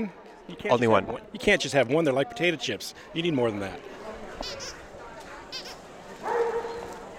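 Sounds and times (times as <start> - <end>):
speech: 0.0 - 4.8
busy indoor murmur of voices: 0.0 - 7.1
dogs barking at a kennel club dog show: 6.2 - 7.0.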